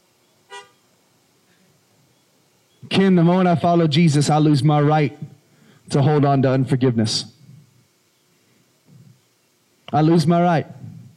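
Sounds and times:
low steady hiss: 0:00.0 - 0:11.1
car horn honk: 0:00.5 - 0:00.8
speech: 0:02.9 - 0:05.3, 0:05.9 - 0:07.3, 0:09.9 - 0:10.9.

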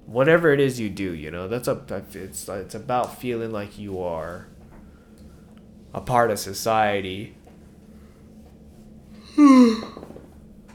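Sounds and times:
speech: 0:00.1 - 0:04.5, 0:05.9 - 0:07.4, 0:09.4 - 0:10.1
person yawning: 0:09.3 - 0:10.1.

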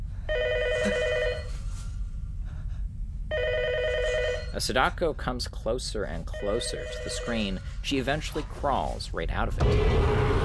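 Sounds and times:
telephone ringing with electronic trilling bursts: 0:00.2 - 0:01.7, 0:03.3 - 0:04.6
speech: 0:04.6 - 0:10.3.

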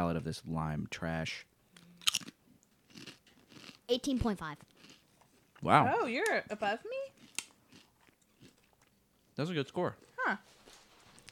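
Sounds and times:
speech: 0:00.0 - 0:02.3, 0:03.9 - 0:04.7, 0:05.6 - 0:07.1, 0:09.4 - 0:10.5
crunchy snack being bitten and chewed: 0:01.7 - 0:05.7, 0:07.1 - 0:09.0.

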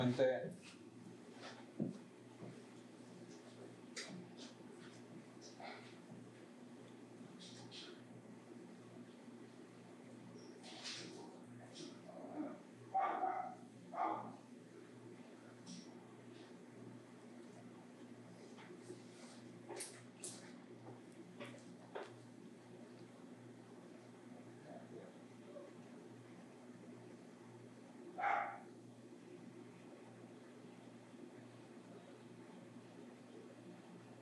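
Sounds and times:
speech: 0:00.0 - 0:00.8
low steady hum: 0:00.0 - 0:34.2
dog barking: 0:12.4 - 0:14.4, 0:28.2 - 0:28.7.

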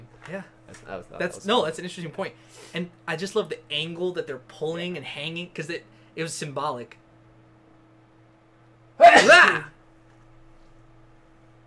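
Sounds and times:
speech: 0:00.3 - 0:07.0, 0:09.0 - 0:09.7
person sneezing: 0:09.0 - 0:09.8.

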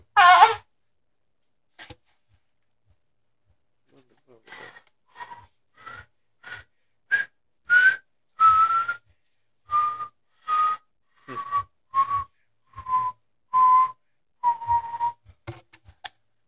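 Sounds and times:
person whistling: 0:07.1 - 0:09.0, 0:09.7 - 0:15.2.

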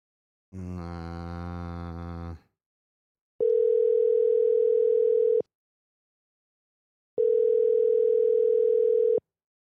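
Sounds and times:
telephone ringback on an outgoing call: 0:03.5 - 0:05.4, 0:07.2 - 0:09.2.

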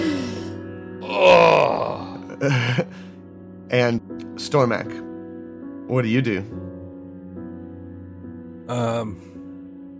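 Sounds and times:
pained groan: 0:00.0 - 0:02.4
speech: 0:02.4 - 0:03.1, 0:03.7 - 0:05.1, 0:05.9 - 0:06.6, 0:08.7 - 0:09.3.

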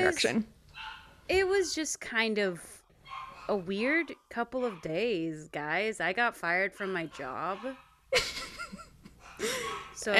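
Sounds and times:
speech: 0:00.1 - 0:00.6, 0:01.3 - 0:02.8, 0:03.5 - 0:08.4, 0:09.4 - 0:10.1
dogs barking and yipping: 0:00.7 - 0:01.4, 0:03.0 - 0:05.3, 0:06.6 - 0:08.1, 0:09.1 - 0:10.1.

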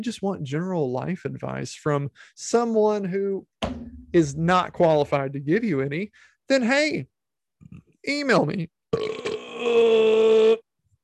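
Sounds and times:
speech: 0:00.0 - 0:10.6
person burping: 0:08.9 - 0:10.7.

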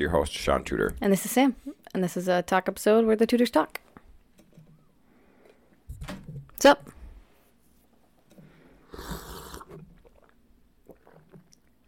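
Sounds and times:
speech: 0:00.0 - 0:03.8, 0:06.1 - 0:07.0
loud slurping swallow: 0:08.8 - 0:11.7
person gulping water: 0:08.9 - 0:11.8.

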